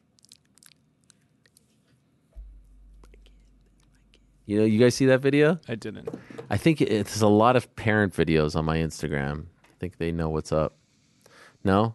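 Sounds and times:
voice imitating gum chewing with wet smacking mouth noises: 0.0s - 1.8s, 2.4s - 4.5s
low rumbling thump: 2.4s - 3.4s
speech: 4.5s - 10.8s, 11.6s - 11.9s.

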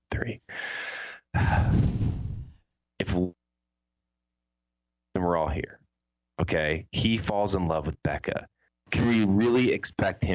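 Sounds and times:
deep breaths: 0.5s - 2.6s
speech: 5.2s - 5.8s, 6.5s - 10.3s.

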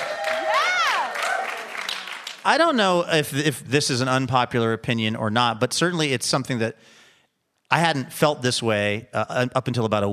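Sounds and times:
crowd cheering: 0.0s - 2.8s
theater audience applause: 0.0s - 2.8s
speech: 2.4s - 7.0s, 7.7s - 10.1s.

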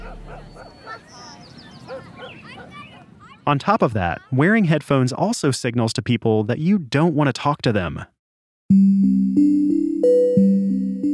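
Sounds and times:
neighbor's dog barking: 0.0s - 3.1s
birds chirping and twittering: 0.0s - 3.6s
speech: 3.5s - 8.1s, 8.7s - 10.8s.

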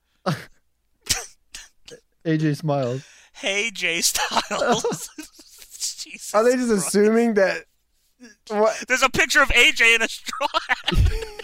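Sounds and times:
person faking a sneeze with their voice: 1.1s - 1.7s
speech: 2.3s - 5.4s, 6.2s - 11.3s
laughter: 3.6s - 7.0s, 10.0s - 11.4s.

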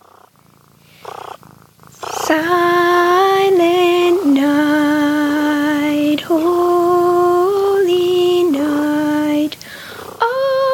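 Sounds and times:
cat purring: 0.0s - 10.7s
speech: 2.3s - 2.8s.

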